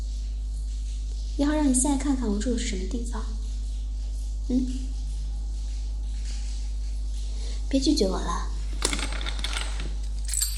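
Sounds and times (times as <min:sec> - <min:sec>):
faint steady hum: 0:00.0 - 0:10.5
speech: 0:01.4 - 0:03.4, 0:04.5 - 0:05.0, 0:07.7 - 0:08.5
car keys jingling as picked up: 0:09.5 - 0:10.5.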